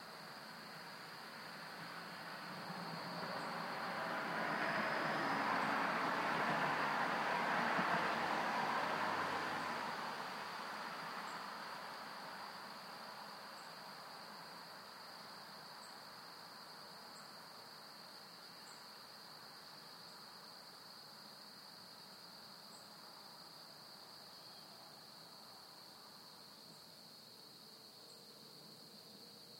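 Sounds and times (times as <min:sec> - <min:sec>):
traffic: 0:00.2 - 0:27.0.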